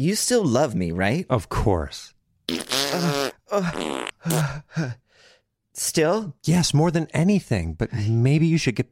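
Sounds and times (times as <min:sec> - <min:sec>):
speech: 0:00.0 - 0:05.0, 0:05.8 - 0:08.9
fart sounds: 0:02.5 - 0:04.5.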